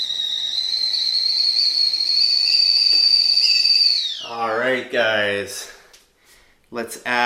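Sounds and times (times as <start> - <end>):
tea kettle whistling: 0.0 - 4.6
speech: 4.7 - 5.7, 6.7 - 7.2.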